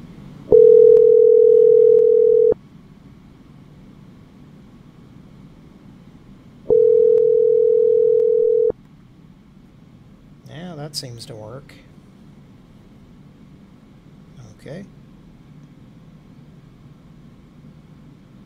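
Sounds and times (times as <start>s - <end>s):
low hum: 0.0s - 18.4s
telephone ringing tone while calling a phone: 0.5s - 2.6s, 6.7s - 8.7s
speech: 11.0s - 12.0s, 14.6s - 15.0s.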